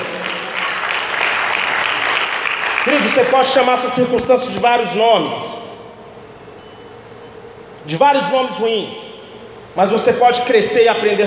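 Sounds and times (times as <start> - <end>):
large crowd applauding: 0.0 - 3.4
speech: 2.8 - 5.6, 7.9 - 9.2, 9.8 - 11.2.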